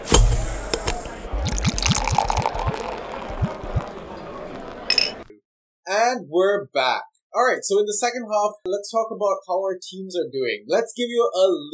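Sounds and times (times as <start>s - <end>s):
pint being poured with glugs: 0.1s - 4.0s
swallowing and sipping: 0.8s - 3.9s
small clink: 4.9s - 5.2s
speech: 6.4s - 11.7s.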